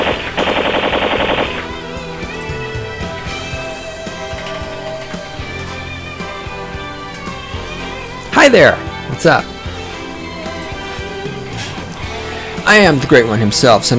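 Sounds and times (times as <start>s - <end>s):
machine gun fire sound effect: 0.0s - 4.4s
steady tonal backdrop: 0.0s - 13.9s
speech: 8.4s - 9.5s, 12.7s - 13.9s.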